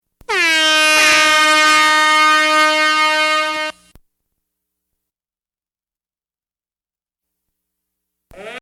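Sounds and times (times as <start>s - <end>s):
fog horn: 0.3s - 3.9s.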